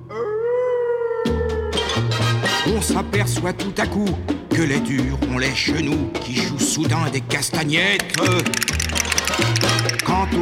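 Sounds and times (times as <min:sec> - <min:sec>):
dog howling: 0:00.0 - 0:02.0
speech: 0:00.1 - 0:00.4, 0:02.8 - 0:10.3
sharp percussive hits: 0:07.9 - 0:10.3.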